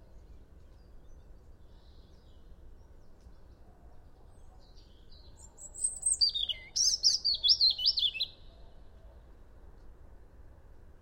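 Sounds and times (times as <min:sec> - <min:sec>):
European robin Erithacus rubecula singing thin whistles and tinkling notes: 0:05.2 - 0:08.4.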